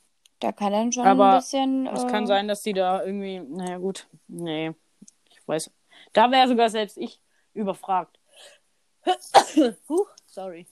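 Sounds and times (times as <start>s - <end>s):
speech: 0.4s - 4.8s, 5.5s - 10.6s
person sneezing: 9.3s - 9.6s.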